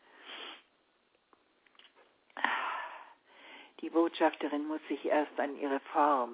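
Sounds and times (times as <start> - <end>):
breathy sniffing inhale: 0.0 - 0.7
speech: 3.8 - 6.3.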